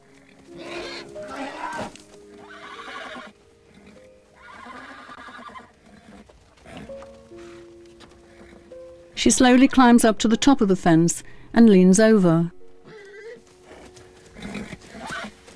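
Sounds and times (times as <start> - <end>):
horse snorting: 0.0 - 8.7, 12.9 - 15.5
horse hoof shuffling: 0.0 - 15.5
horse neighing in a corral: 0.5 - 7.6, 8.2 - 8.7, 12.8 - 15.4
speech: 9.2 - 12.6.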